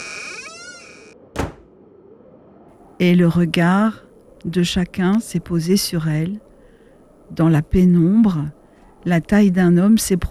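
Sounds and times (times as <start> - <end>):
wooden stable door creaking slowly open: 0.0 - 1.7
short dull thud of a stable door stopping: 1.4 - 1.8
speech: 3.0 - 6.5, 7.3 - 10.2.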